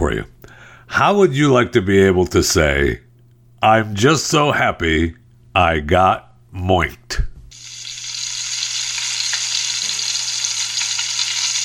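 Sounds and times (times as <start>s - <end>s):
speech: 0.0s - 3.0s, 3.6s - 7.3s
bacon sizzling and frying in a pan: 7.5s - 11.6s.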